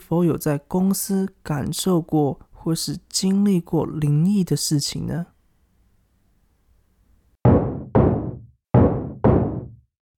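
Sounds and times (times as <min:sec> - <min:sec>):
speech: 0:00.1 - 0:05.3
knocking on a door: 0:07.5 - 0:09.8.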